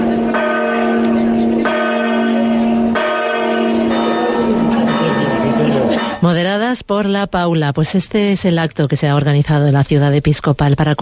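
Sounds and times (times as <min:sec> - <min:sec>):
several church bells ringing together in a peal: 0:00.0 - 0:06.3
speech: 0:06.7 - 0:10.9.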